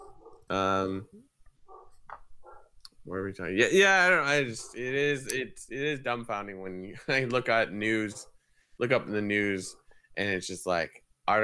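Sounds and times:
loud drawn-out dog bark: 0.0 - 0.5, 1.7 - 2.7
speech: 0.5 - 1.3, 3.1 - 11.4.

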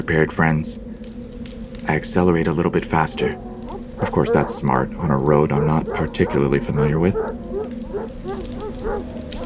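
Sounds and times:
speech: 0.0 - 0.9, 1.8 - 7.4
steady falling rain: 0.0 - 9.4
dogs howling: 2.6 - 9.4.

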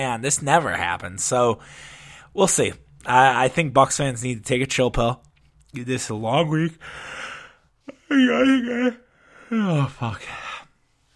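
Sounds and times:
speech: 0.0 - 7.2, 8.1 - 10.4
drawn-out human yawn with a long low voiced groan: 7.9 - 10.7.

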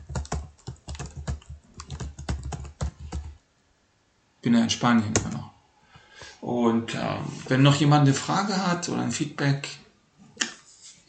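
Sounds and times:
rapid typing on a computer keyboard: 0.0 - 3.4
speech: 4.4 - 5.5, 6.4 - 9.8.

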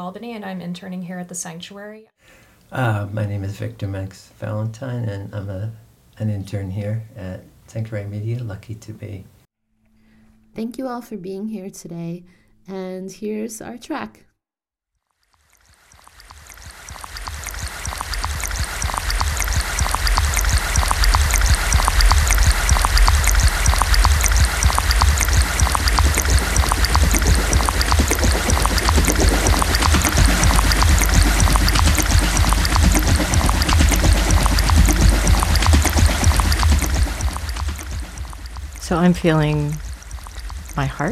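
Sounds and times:
speech: 0.0 - 9.3, 10.6 - 14.3, 38.9 - 39.8, 40.8 - 41.1
creek water rushing and burbling over rocks: 16.5 - 41.1.

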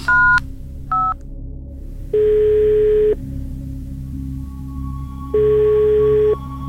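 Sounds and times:
low steady hum: 0.0 - 6.6
phone keypad beeps: 0.1 - 1.2.

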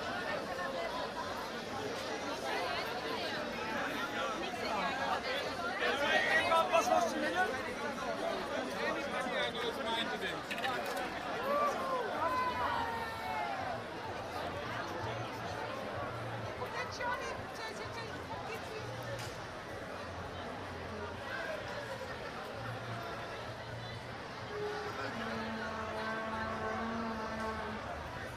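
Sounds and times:
crowd celebrating a soccer win in a city centre: 0.0 - 28.3
steady horn-like tone: 24.5 - 28.3.

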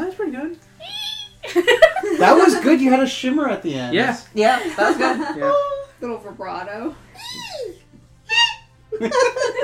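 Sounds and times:
speech: 0.3 - 0.9, 1.5 - 7.8, 9.0 - 9.6
laughter: 1.4 - 2.5, 4.5 - 5.7, 8.9 - 9.6
voice imitating a squeaky fairy fart: 7.2 - 8.7.

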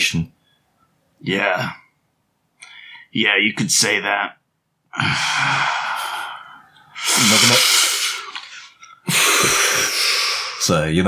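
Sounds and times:
speech: 0.0 - 0.4, 1.2 - 1.8, 3.1 - 4.4, 5.0 - 5.9, 7.0 - 7.8, 9.1 - 9.9, 10.7 - 11.0
person inhaling deeply miming a cigarette drag: 5.0 - 10.6
breathy exhales: 5.0 - 10.7.

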